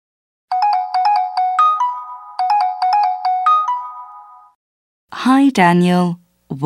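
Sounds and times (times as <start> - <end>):
phone ringtone playing a bright electronic melody for an incoming call: 0.5 - 4.6
speech: 5.2 - 6.6.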